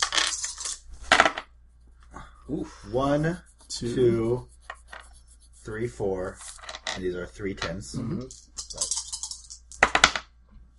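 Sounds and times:
dice clattering across a hard tabletop during a tabletop game: 0.0s - 1.5s, 6.6s - 7.0s, 8.2s - 10.3s
speech: 2.5s - 4.5s, 5.6s - 8.4s.

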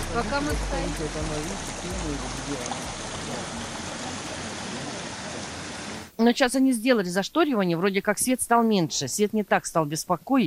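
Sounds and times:
gas generators droning at greenhouse complex: 0.0s - 6.1s
speech: 0.1s - 3.6s, 6.2s - 10.4s.

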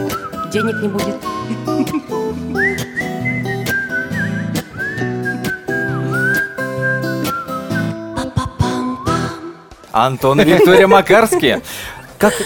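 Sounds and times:
person whistling a wavering melody: 0.0s - 9.6s
speech: 0.5s - 3.1s, 10.0s - 12.4s
laughter: 10.3s - 12.4s.

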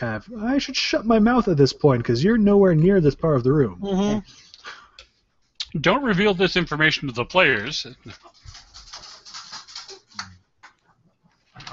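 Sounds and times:
speech: 0.0s - 4.8s, 5.7s - 8.6s
excited dog scrabbling and snuffling while being given treats: 8.1s - 11.0s.

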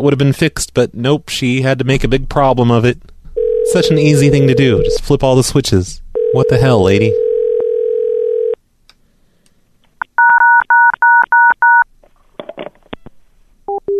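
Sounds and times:
speech: 0.0s - 7.2s
phone dial tone: 3.4s - 5.0s, 6.2s - 8.6s, 10.2s - 11.8s.

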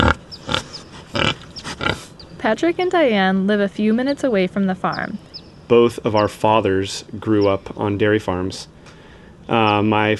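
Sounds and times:
pigs grunting: 0.0s - 2.2s
faint higher squeaky chirps: 0.0s - 2.5s, 4.8s - 6.5s, 7.3s - 7.8s
speech: 2.5s - 8.8s, 9.5s - 10.1s.

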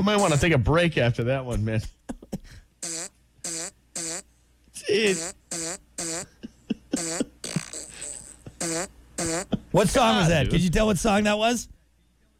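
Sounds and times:
buzzy fart noises blown like a simple tune: 0.0s - 0.5s, 2.8s - 4.3s, 4.9s - 9.7s
speech: 0.0s - 3.0s, 4.9s - 6.3s, 8.7s - 11.8s
man exclaiming: 4.8s - 5.2s.

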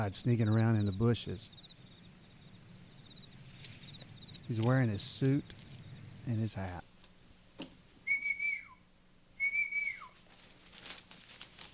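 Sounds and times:
speech: 0.0s - 1.6s, 4.5s - 5.6s, 6.3s - 6.9s
whistle blowing: 8.0s - 8.8s, 9.4s - 10.2s.

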